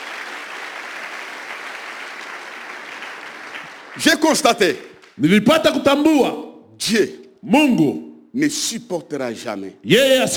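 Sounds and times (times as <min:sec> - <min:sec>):
church congregation applauding during a worship service: 0:00.0 - 0:05.3
speech: 0:04.0 - 0:10.3.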